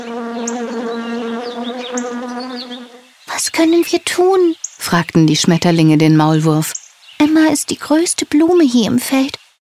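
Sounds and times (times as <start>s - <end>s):
bees buzzing: 0.0s - 3.2s
speech: 3.6s - 9.4s.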